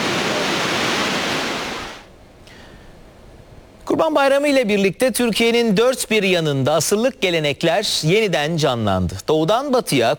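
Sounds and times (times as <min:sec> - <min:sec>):
powerful waterfall roaring: 0:00.0 - 0:02.1
speech: 0:04.0 - 0:10.1.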